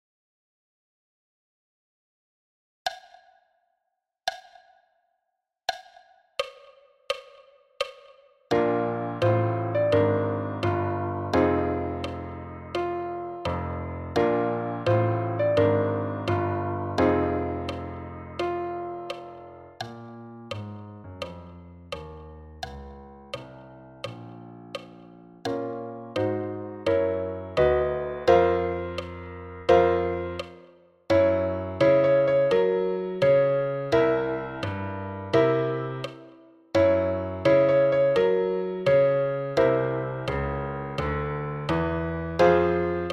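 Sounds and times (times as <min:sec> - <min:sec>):
piano playing: 0:08.5 - 0:22.6, 0:23.3 - 0:43.1.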